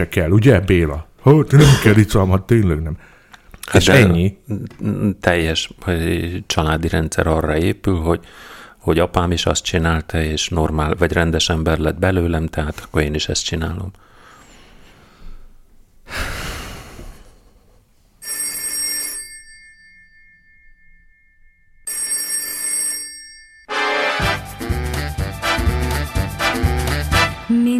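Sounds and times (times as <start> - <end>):
speech: 0.0 - 3.1, 3.7 - 14.1
sharp intake of breath: 8.3 - 8.8, 16.1 - 17.4
telephone bell ringing: 18.2 - 24.0
full band with drums and instruments playing: 23.7 - 27.7.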